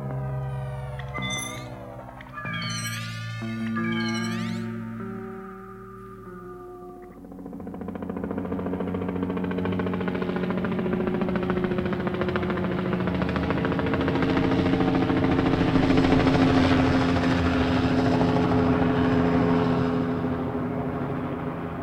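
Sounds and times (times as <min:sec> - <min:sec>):
helicopter engine drone: 0:00.0 - 0:21.8
helicopter flying out to sea with rotor chop: 0:07.6 - 0:20.0.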